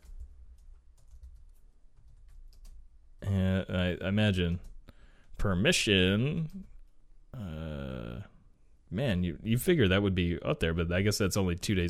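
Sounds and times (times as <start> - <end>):
typing on a computer keyboard: 0.0 - 2.9
speech: 3.9 - 4.7, 5.4 - 6.7, 8.9 - 11.8.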